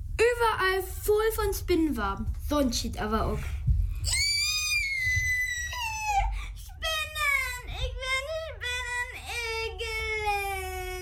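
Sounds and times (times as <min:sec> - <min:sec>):
low rumbling noise: 0:00.0 - 0:11.0
speech: 0:00.3 - 0:04.2
person screaming in fright: 0:04.0 - 0:06.2.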